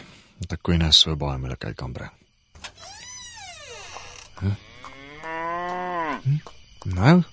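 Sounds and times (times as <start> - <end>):
speech: 0.6 - 2.2, 4.4 - 4.7, 6.2 - 7.3
cow mooing: 4.6 - 6.2.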